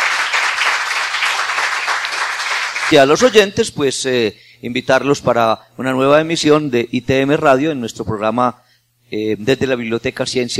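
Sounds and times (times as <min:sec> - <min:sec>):
audience applause at the close of a literary conversation: 0:00.0 - 0:03.0
speech: 0:02.9 - 0:10.5.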